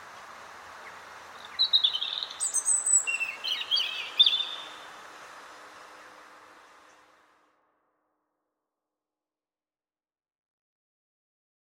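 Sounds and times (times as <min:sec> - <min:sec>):
quiet hiss: 0:00.0 - 0:08.3
European robin Erithacus rubecula singing high twittering notes: 0:00.8 - 0:04.9.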